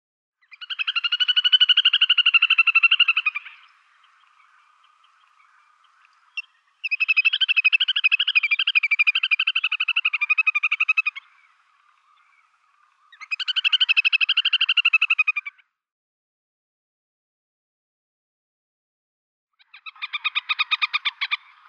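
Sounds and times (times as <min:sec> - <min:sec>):
little grebe calling: 0:00.4 - 0:15.6, 0:19.6 - 0:21.6.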